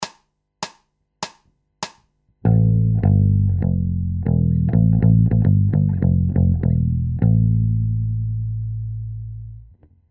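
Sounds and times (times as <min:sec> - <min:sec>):
bass loops: 0:02.4 - 0:09.6.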